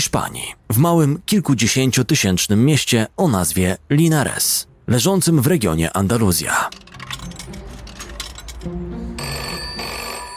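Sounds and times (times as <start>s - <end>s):
speech: 0.0s - 7.6s, 8.6s - 9.6s
telephone ringing with electronic tones: 9.2s - 10.3s.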